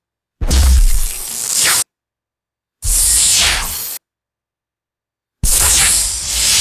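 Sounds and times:
synthetic swooshes: 0.4 - 1.3
quick synthetic electrical zaps: 0.4 - 1.8, 5.4 - 6.5.

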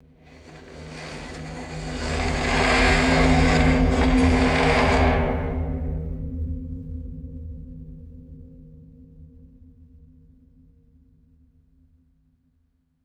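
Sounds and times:
slow resonant metallic scrape and swell: 0.3 - 6.4.

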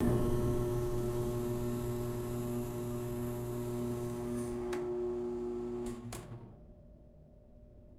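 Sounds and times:
electrical stove heating element humming: 0.0 - 6.1.

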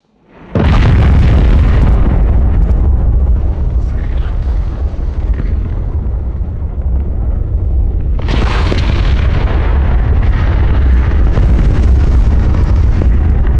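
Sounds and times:
distant volcanic eruption rumble and roar of liquid mud: 0.3 - 13.5.

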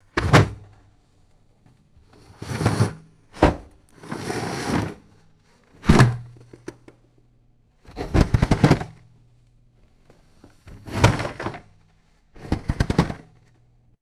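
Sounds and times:
plastic ice chest cooler moving and scraping: 2.3 - 5.0, 7.9 - 9.0, 10.7 - 11.7, 12.4 - 13.4.

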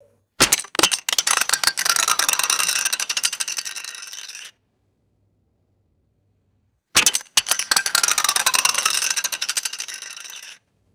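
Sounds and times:
steel film can dropping and spinning: 0.4 - 4.5, 7.0 - 10.6.

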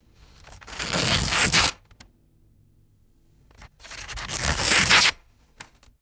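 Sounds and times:
thin paper slowly tearing: 0.3 - 1.8, 3.8 - 5.2.

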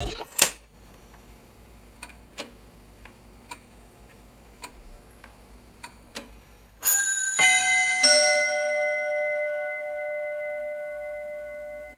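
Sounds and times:
mechanical mantle clock chiming: 6.8 - 11.9.

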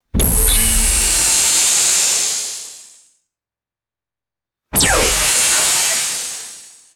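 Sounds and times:
powerful sci-fi laser beam shot: 0.4 - 1.2, 4.8 - 6.7.

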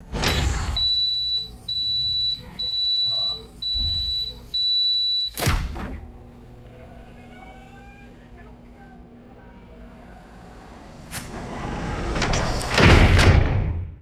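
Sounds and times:
train interior door closing: 0.0 - 13.8
train door warning beeps: 0.3 - 5.5.

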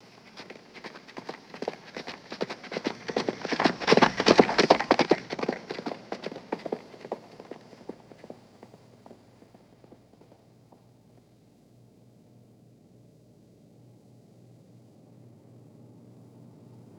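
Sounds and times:
rapid running footsteps: 0.0 - 10.8.

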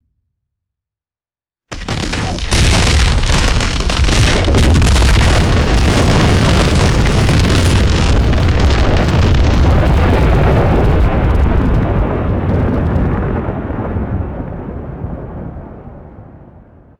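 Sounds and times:
sharp thunderclap with deep rolling rumble: 1.7 - 16.7.

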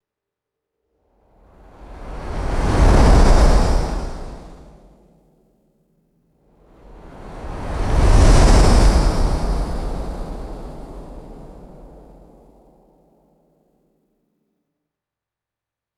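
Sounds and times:
slow airy windy whooshes passing by: 2.4 - 4.7, 7.2 - 12.0.

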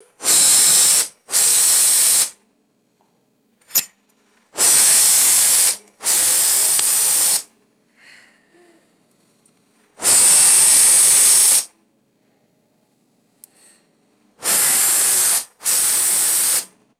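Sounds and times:
explosive compressed air bursts: 0.0 - 2.4, 4.6 - 7.5, 10.0 - 11.7, 14.4 - 16.8
metallic handling: 3.6 - 4.0.

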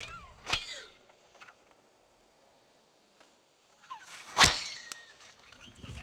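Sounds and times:
arrow fired with whistling flight: 0.0 - 1.6, 3.8 - 6.0.

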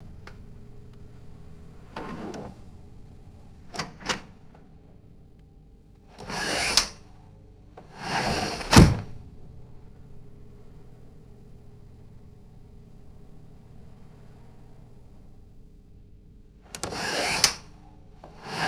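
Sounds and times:
modern sash window opening and closing: 0.0 - 5.3, 6.2 - 7.2, 7.8 - 15.4, 16.8 - 18.6.

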